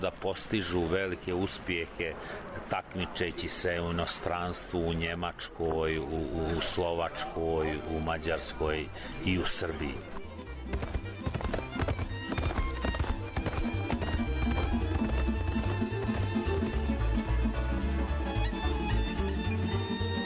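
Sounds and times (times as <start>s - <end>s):
speech: 0.0s - 10.2s
horse hooves clip-clopping on a hard surface: 9.8s - 20.2s.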